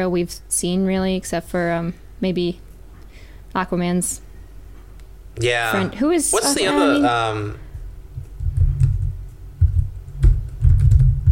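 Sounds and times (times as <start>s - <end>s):
speech: 0.0s - 2.6s, 3.5s - 4.2s, 5.4s - 7.6s
rapid typing on a computer keyboard: 8.4s - 11.2s.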